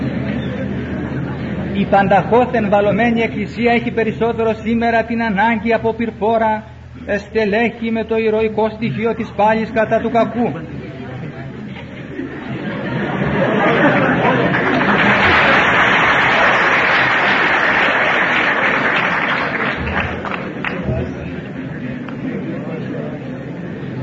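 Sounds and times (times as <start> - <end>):
murmuring voices in the crowd: 0.0 - 4.2, 6.7 - 24.0
speech: 1.8 - 10.8
laughter: 9.7 - 22.9
audience applauding: 13.2 - 22.2.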